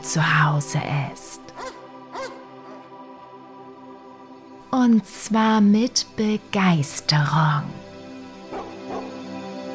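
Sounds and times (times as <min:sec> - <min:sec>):
speech: 0:00.0 - 0:01.4, 0:04.7 - 0:07.8
puppies and older dogs barking and yipping: 0:01.6 - 0:02.9, 0:08.5 - 0:09.2.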